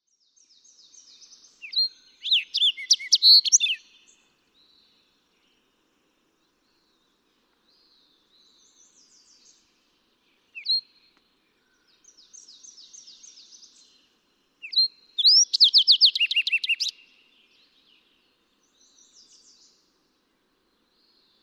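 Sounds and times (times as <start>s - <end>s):
fox sparrow calling: 1.6s - 4.1s, 14.6s - 17.0s.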